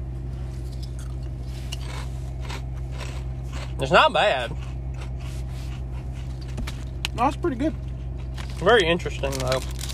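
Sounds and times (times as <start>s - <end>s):
loud steady low hum: 0.0s - 9.9s
chili-flavored chips crunching as they are chewed: 0.7s - 5.2s, 8.2s - 9.9s
speech: 3.8s - 4.6s, 7.2s - 7.8s, 8.6s - 9.8s.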